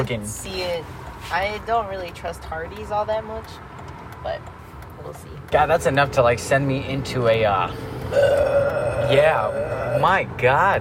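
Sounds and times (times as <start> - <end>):
speech: 0.0 - 10.7
loud drawn-out burp: 8.1 - 10.3.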